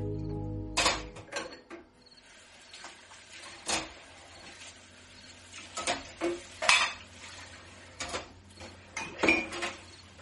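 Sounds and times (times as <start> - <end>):
dishes and cutlery clattering while washing up: 0.8 - 1.9, 5.7 - 7.1, 8.0 - 10.0.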